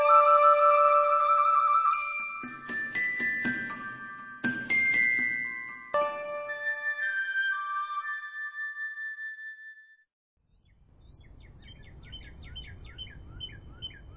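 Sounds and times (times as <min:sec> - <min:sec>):
ringing tonal chime: 0:00.0 - 0:07.8.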